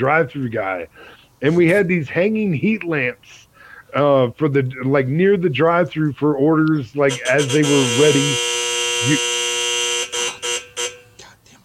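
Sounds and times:
speech: 0:00.0 - 0:09.3
harsh electronic timer buzzer: 0:07.1 - 0:11.2.

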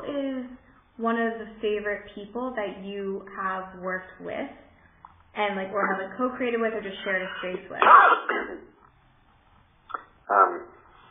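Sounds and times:
speech: 0:01.0 - 0:04.7, 0:05.4 - 0:08.7, 0:10.3 - 0:10.7
person coughing harshly: 0:07.4 - 0:08.7.

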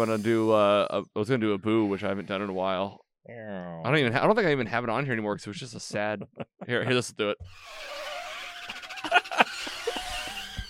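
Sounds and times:
speech: 0:00.0 - 0:08.0
laughter: 0:05.0 - 0:07.4, 0:08.7 - 0:10.6
car brakes screeching: 0:07.5 - 0:10.6.

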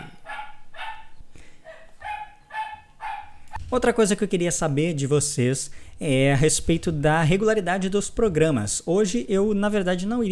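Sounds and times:
several dogs barking in sharp yaps: 0:00.0 - 0:03.6
speech: 0:03.7 - 0:10.3.

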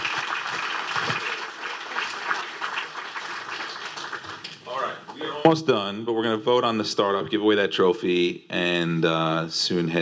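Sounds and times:
crowd applauding at an innovation awards event: 0:00.0 - 0:04.9
speech: 0:05.4 - 0:10.0.

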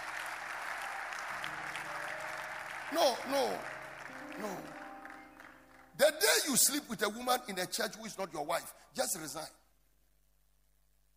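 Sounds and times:
audience applause: 0:00.0 - 0:06.4
speech: 0:02.9 - 0:03.7, 0:04.4 - 0:04.8, 0:06.0 - 0:09.6.

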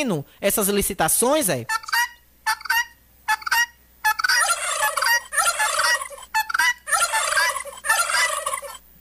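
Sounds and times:
speech: 0:00.0 - 0:01.8
turkey gobbling: 0:01.7 - 0:08.8.

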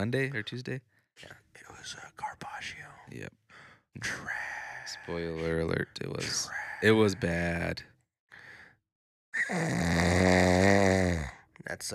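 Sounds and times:
speech: 0:00.0 - 0:03.4, 0:04.0 - 0:07.9, 0:09.4 - 0:11.9
long loud rattling snore: 0:09.4 - 0:11.4.

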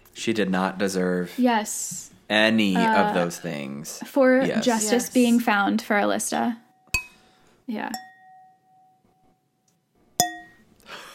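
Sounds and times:
speech: 0:00.2 - 0:06.6, 0:07.7 - 0:08.0
glasses clinking in a toast: 0:06.8 - 0:09.0, 0:10.2 - 0:10.7.

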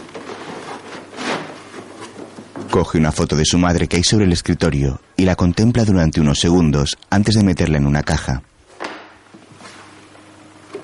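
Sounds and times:
drawer scraping slide: 0:00.0 - 0:02.4
drawer being pulled open: 0:00.0 - 0:02.8
speech: 0:02.8 - 0:08.5.

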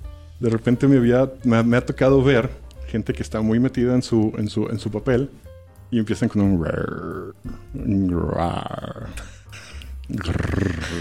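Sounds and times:
speech: 0:00.4 - 0:09.4, 0:10.1 - 0:10.9
voice murmuring: 0:06.7 - 0:09.3, 0:10.0 - 0:10.9
man imitating a guttural growling grunt: 0:08.0 - 0:09.2, 0:10.1 - 0:10.9.

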